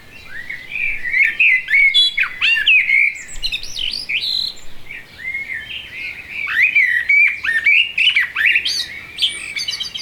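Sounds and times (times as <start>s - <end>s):
blackbird song of rich warbled notes: 0.0s - 10.0s.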